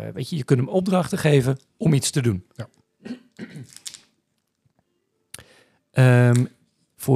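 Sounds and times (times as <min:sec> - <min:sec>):
speech: 0:00.0 - 0:03.8, 0:06.0 - 0:07.1
paper candy wrapper crinkling and rustling as it is opened: 0:03.7 - 0:04.6.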